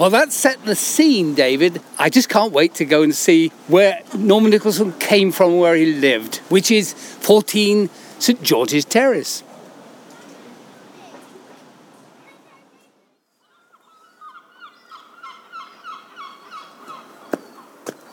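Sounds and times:
speech: 0.0s - 9.5s
gull squawking: 13.5s - 17.7s.

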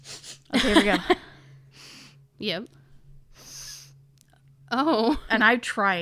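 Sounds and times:
forceful sniff through one nostril by a person with a deviated septum: 0.0s - 0.5s, 3.4s - 4.0s
steady low hum: 0.0s - 5.9s
laughter: 0.5s - 1.3s
speech: 0.6s - 1.2s, 2.4s - 2.8s, 4.7s - 5.9s.

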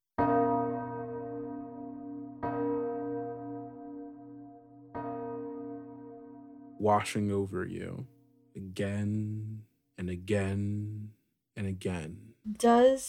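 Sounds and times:
church bell tolling: 0.2s - 7.6s
speech: 6.8s - 13.0s.

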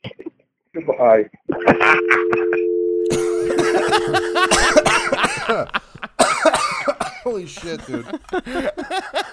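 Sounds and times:
speech: 0.8s - 6.6s, 7.3s - 9.3s
laughter: 1.5s - 6.2s, 7.6s - 9.3s
person having a loud coughing fit: 3.1s - 5.6s, 6.2s - 7.3s.

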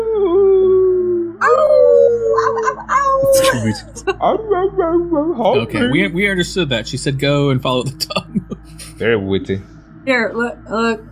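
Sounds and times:
person imitating a wolf howl: 0.0s - 6.7s
person making choppy yelping sounds: 2.4s - 4.0s
laughter: 2.4s - 4.4s, 5.4s - 9.6s
speech: 3.6s - 8.2s, 9.0s - 11.1s.

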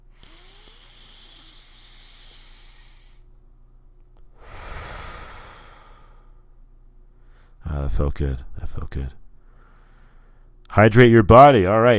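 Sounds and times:
deep breath inhaling and exhaling: 0.0s - 3.3s, 4.3s - 6.5s, 7.1s - 7.6s, 9.4s - 10.6s
speech: 7.9s - 9.2s, 10.8s - 11.9s.

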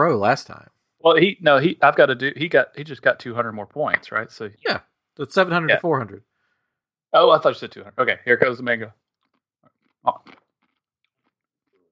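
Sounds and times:
speech: 0.0s - 6.3s, 7.1s - 9.0s, 10.0s - 10.4s
crunchy bite of food being chewed: 9.3s - 10.8s.

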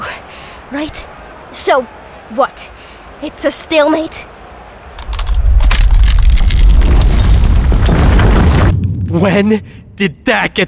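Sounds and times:
speech: 0.7s - 4.3s, 9.2s - 10.6s
ice cracking and shattering with crunching roar: 5.0s - 9.0s.

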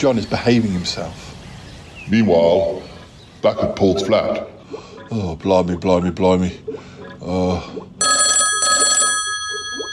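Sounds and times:
speech: 0.0s - 1.4s, 2.1s - 8.0s
telephone bell ringing in rattling bursts: 8.0s - 9.9s.

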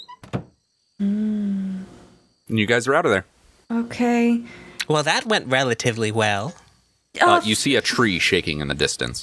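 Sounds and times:
door swinging shut of its own accord with heavy thuds: 0.0s - 0.6s
speech: 1.0s - 1.6s, 2.5s - 6.6s, 7.2s - 9.2s.

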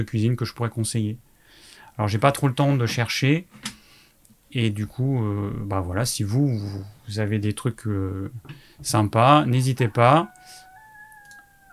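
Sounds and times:
speech: 0.0s - 3.8s, 4.5s - 10.6s
rooster crowing outdoors: 9.3s - 11.7s.

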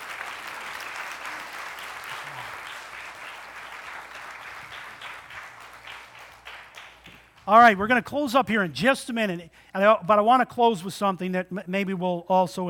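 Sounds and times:
crowd applauding: 0.0s - 7.5s
speech: 7.5s - 12.6s.

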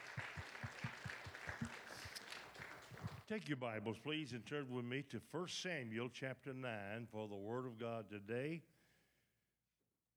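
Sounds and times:
audience applauding a pastor and his family: 0.0s - 3.3s
speech: 3.3s - 8.7s.

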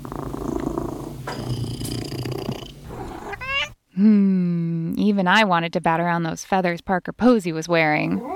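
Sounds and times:
cat purring: 0.0s - 3.8s
cat meowing: 3.3s - 3.8s
speech: 4.0s - 4.3s, 5.1s - 8.3s.

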